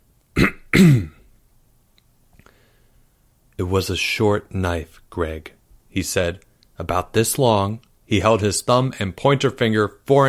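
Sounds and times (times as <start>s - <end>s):
man clearing his throat: 0.4s - 1.3s
speech: 0.7s - 1.1s, 3.6s - 10.2s.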